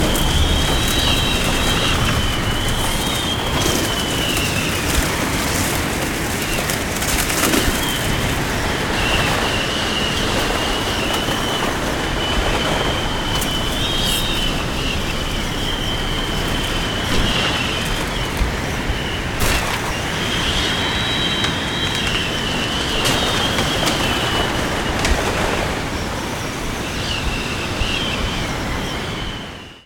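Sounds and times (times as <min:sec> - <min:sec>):
tornado wind: 0:00.0 - 0:29.8.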